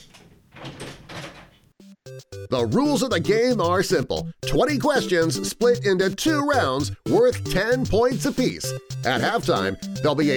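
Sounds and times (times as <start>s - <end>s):
door pulled open with rough scraping and rattling: 0.0s - 1.7s
speech: 2.5s - 10.3s.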